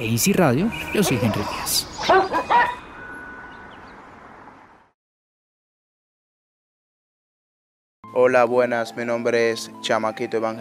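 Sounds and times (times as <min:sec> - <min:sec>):
speech: 0:00.0 - 0:02.5, 0:08.1 - 0:10.6
small female dog yipping: 0:02.0 - 0:02.8.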